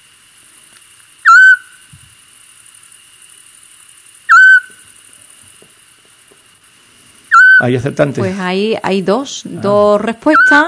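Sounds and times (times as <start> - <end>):
Eurasian scops owl call: 1.2 - 1.9, 4.3 - 4.8, 7.3 - 7.7, 10.3 - 10.6
speech: 7.6 - 10.6.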